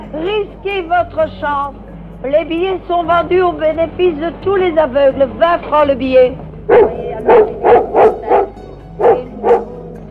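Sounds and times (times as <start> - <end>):
speech: 0.6 - 7.5
large German shepherd dog barking: 6.7 - 9.8.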